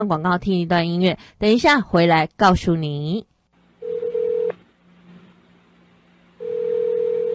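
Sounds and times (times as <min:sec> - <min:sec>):
speech: 0:00.0 - 0:03.3
faint hum: 0:00.0 - 0:07.3
telephone ringback tone before voicemail: 0:03.8 - 0:04.5, 0:06.4 - 0:07.3.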